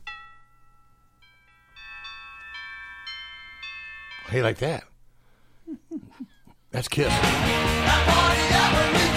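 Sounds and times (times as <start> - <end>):
doorbell chiming: 0.0 - 4.8
speech: 4.3 - 4.9, 5.7 - 9.0.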